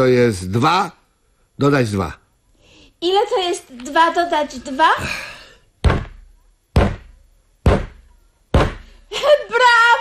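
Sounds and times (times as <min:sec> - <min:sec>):
speech: 0:00.0 - 0:01.0, 0:01.6 - 0:02.2, 0:03.0 - 0:05.3
foot kicking a chair: 0:05.8 - 0:07.1, 0:07.7 - 0:08.9.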